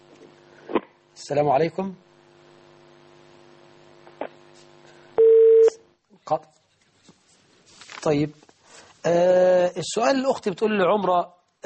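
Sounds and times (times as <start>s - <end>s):
speech: 1.2s - 2.1s, 6.3s - 6.5s, 8.0s - 8.4s, 9.0s - 11.6s
steady electronic telephone tone on a radio call-in line: 5.2s - 5.8s.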